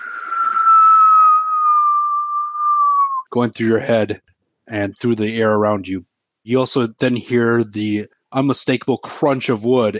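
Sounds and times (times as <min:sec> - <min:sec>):
wind whistling: 0:00.0 - 0:03.3
speech: 0:03.4 - 0:09.9.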